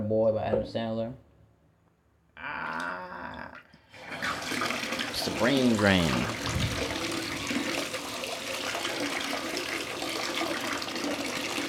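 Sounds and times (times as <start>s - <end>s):
speech: 0.1s - 1.3s, 5.2s - 6.6s
water running from a tap: 3.9s - 11.6s.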